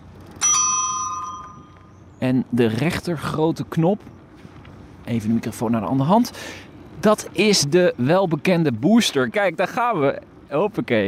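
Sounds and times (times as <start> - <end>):
S5 e-bike electronic bell ding: 0.4 - 1.9
speech: 2.2 - 4.2, 5.1 - 11.0.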